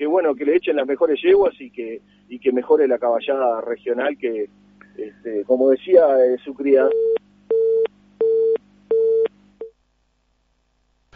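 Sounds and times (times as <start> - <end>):
faint low hum: 0.0 - 11.1
speech: 0.1 - 7.2
phone busy tone beeps after a dropped call: 6.9 - 9.3.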